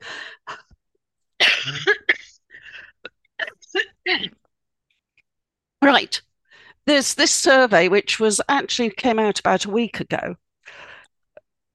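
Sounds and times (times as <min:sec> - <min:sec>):
fit of rough throaty coughing: 0:01.4 - 0:04.5
speech: 0:01.6 - 0:02.0, 0:06.9 - 0:10.8.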